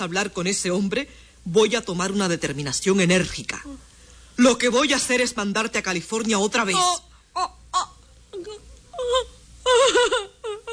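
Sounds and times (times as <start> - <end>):
speech: 0.0 - 10.3
woman crying and moaning: 6.8 - 10.7.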